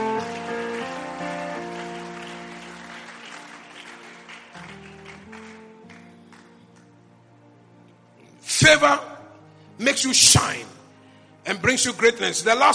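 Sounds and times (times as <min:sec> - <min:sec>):
large crowd clapping hands: 0:00.0 - 0:06.9
speech: 0:08.7 - 0:09.1, 0:09.8 - 0:10.8, 0:11.5 - 0:12.7.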